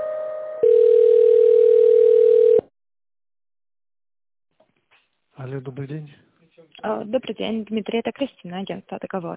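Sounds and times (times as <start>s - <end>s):
electronic telephone line tones while a call is transferred: 0.6s - 2.7s
speech: 5.8s - 9.3s.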